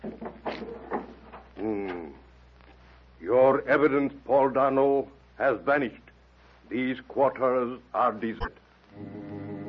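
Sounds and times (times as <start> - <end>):
short thuds and scrapes: 0.0 - 1.5
speech: 3.6 - 6.1, 6.7 - 9.1.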